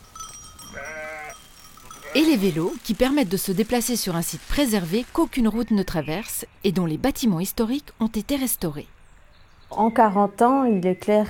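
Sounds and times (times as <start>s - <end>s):
sheep bleating on a university campus: 0.7s - 2.7s
soft outdoor hum: 0.8s - 11.2s
speech: 2.1s - 9.0s, 9.7s - 11.2s.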